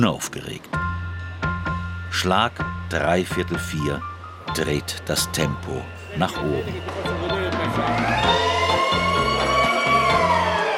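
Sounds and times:
speech: 0.0 - 0.8, 2.1 - 8.4
fish market siren wailing at opening: 6.6 - 10.7.

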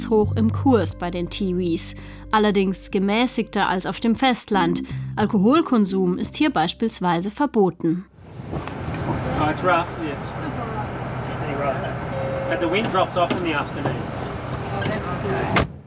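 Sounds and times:
speech: 0.0 - 8.7, 9.5 - 10.3, 12.5 - 14.2
bus engine drone: 8.1 - 15.8
road noise: 8.1 - 15.8.

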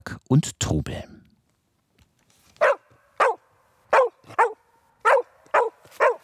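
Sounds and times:
speech: 0.1 - 1.1
herding dog barking excitedly: 2.6 - 6.2.

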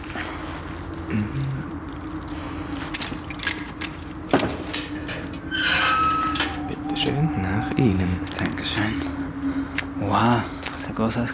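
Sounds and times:
steady low engine-like hum: 0.0 - 11.3
speech: 1.1 - 1.8, 7.6 - 9.1, 10.1 - 11.3
keys jingling while unlocking a family crypt door: 1.1 - 6.9
metallic clack of a family crypt door lock turning: 2.8 - 7.0.

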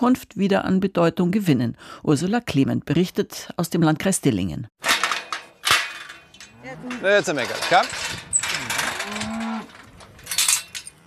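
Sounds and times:
speech: 0.0 - 4.8, 6.6 - 8.2
cow mooing on a pasture at an organic farm: 6.4 - 7.6, 8.5 - 11.0.

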